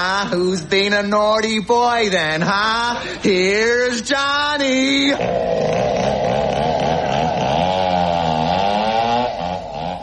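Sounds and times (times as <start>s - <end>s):
speech: 0.0s - 6.4s
chainsaw engine revving: 5.1s - 10.0s.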